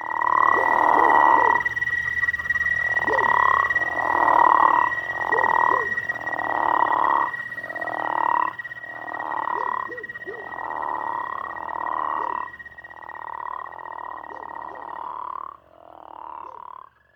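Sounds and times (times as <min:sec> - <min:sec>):
crawfish frog giving deep snoring croaks: 0:00.0 - 0:17.1.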